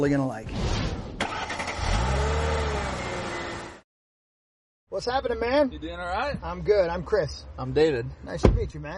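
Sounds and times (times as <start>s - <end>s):
speech: 0.0s - 0.8s, 5.0s - 8.9s
car engine cranking, starting and revving: 1.2s - 3.8s.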